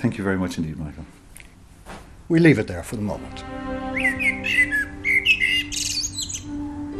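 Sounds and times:
speech: 0.0 - 1.2, 2.3 - 4.5
blackbird singing fluting phrases: 3.9 - 6.6.

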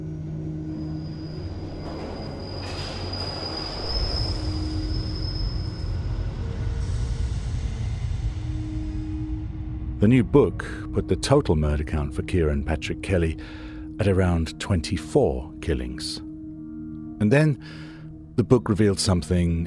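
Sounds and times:
London Underground tube train rumbling past: 0.0 - 11.3
tube train wheels squealing high-pitched: 0.2 - 7.2
speech: 10.0 - 16.3, 17.2 - 19.6.

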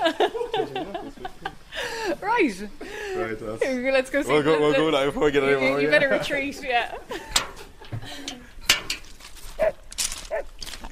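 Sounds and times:
laughter: 0.0 - 2.2, 3.5 - 8.6
speech: 2.4 - 7.2
sharp clanks and clatter: 7.3 - 10.8
farm dogs barking and yelping on a sheep farm: 9.6 - 10.6.

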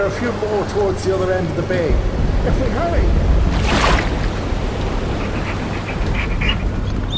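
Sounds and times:
speech: 0.0 - 3.8
rough ocean waves roaring in a storm in a bay: 0.0 - 7.1
deep rumble: 0.7 - 7.1.

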